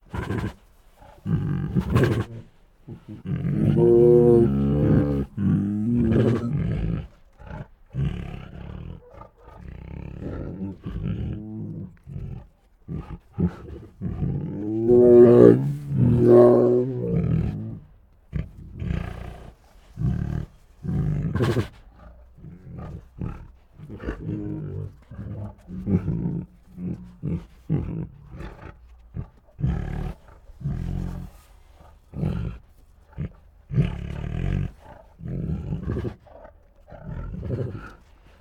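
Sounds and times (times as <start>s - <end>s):
two tigers making grumbly growls and moans: 0.0s - 38.4s.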